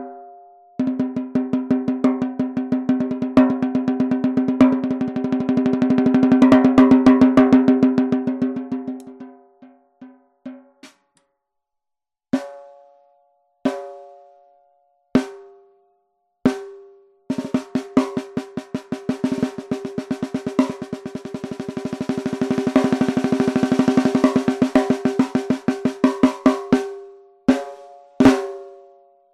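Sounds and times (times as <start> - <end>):
Tama metal 10x65 snare drum: 0.8 - 9.3, 10.5 - 11.1, 12.3 - 12.7, 16.5 - 28.9.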